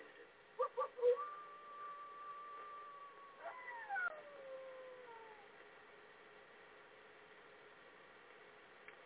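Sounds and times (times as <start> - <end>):
wolves howling: 0.6 - 5.6.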